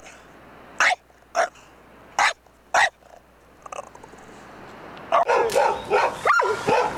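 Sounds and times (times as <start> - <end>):
dog barking: 0.8 - 1.6, 2.2 - 3.0, 5.1 - 6.9.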